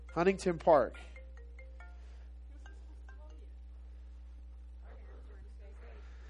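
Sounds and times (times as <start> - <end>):
cell phone ringtone in church: 0.0 - 3.6
steady low hum: 0.0 - 6.2
speech: 0.2 - 1.1.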